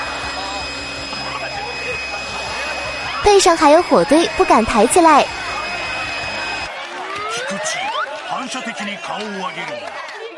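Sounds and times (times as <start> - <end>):
powerful hair dryer blowing hot air: 0.0 - 6.7
speech: 3.2 - 5.4, 8.5 - 10.1.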